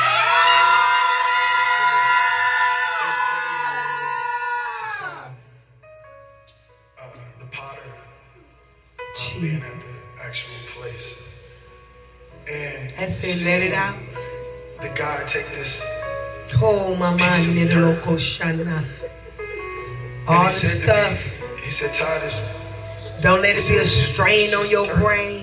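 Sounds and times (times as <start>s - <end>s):
crowd screaming together in a large room: 0.0s - 5.5s
speech: 13.5s - 14.0s, 14.8s - 19.1s, 20.3s - 22.6s, 23.2s - 25.4s.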